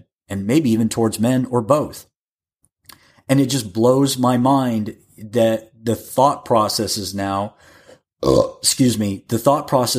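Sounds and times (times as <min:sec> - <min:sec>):
speech: 0:00.3 - 0:02.1, 0:03.3 - 0:09.9
loud voiced low rough burp: 0:08.2 - 0:08.7.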